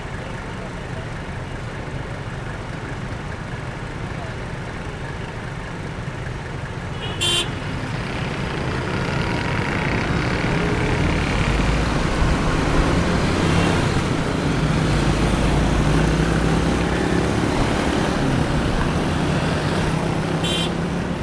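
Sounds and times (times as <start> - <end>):
heavy city-centre road traffic rumbling: 0.0 - 21.2
car horn toot: 6.9 - 7.7, 20.4 - 20.8.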